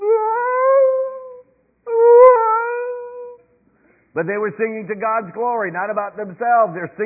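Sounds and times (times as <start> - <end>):
voice imitating whale song with moaning tones: 0.0 - 3.4
speech: 4.2 - 7.0.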